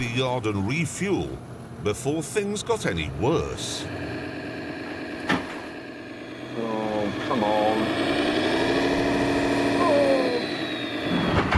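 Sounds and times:
speech: 0.0 - 4.2
four-wheel-drive vehicle engine roaring at high revs: 2.8 - 11.5.

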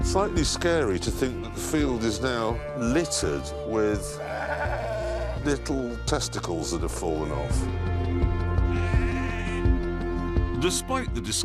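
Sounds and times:
speech: 0.1 - 4.7, 5.4 - 7.9, 10.6 - 11.4
lambs bleating in a springtime farm field: 3.9 - 5.5, 8.6 - 9.7.

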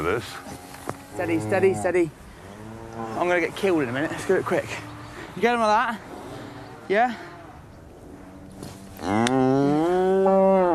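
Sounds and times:
speech: 0.0 - 0.6, 1.2 - 2.2, 3.0 - 6.1, 6.9 - 7.3
cow mooing: 0.6 - 3.3, 9.0 - 10.7.

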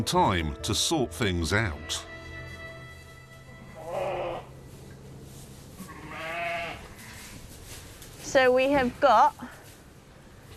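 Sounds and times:
speech: 0.0 - 2.1, 8.3 - 9.6
sheep bleating in barn: 3.6 - 4.6, 5.8 - 7.3.

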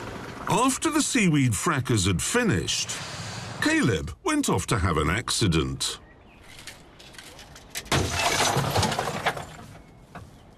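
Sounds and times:
speech: 0.5 - 6.0
loud crash of breaking glass: 7.9 - 9.6.

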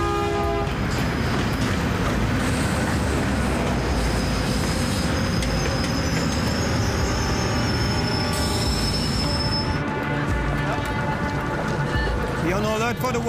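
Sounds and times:
train rolling on rails: 0.0 - 13.2
train wheel squeals: 4.0 - 9.8.

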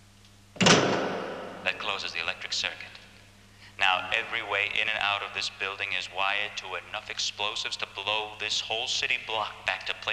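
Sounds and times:
door shutting close by with a heavy thud: 0.6 - 1.7
speech: 1.8 - 3.0, 3.8 - 10.1.

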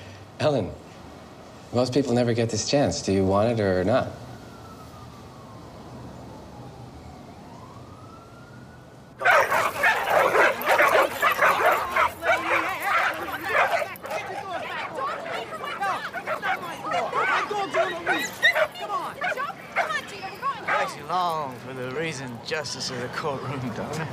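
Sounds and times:
speech: 0.4 - 0.8, 1.7 - 4.2, 22.7 - 24.1
several dogs barking yipping and whimpering: 9.2 - 21.4.

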